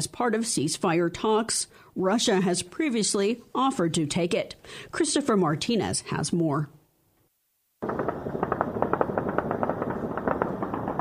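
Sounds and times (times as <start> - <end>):
speech: 0.0 - 6.8
celebratory gunfire fired into the sky over Beirut Lebanon: 7.8 - 11.0.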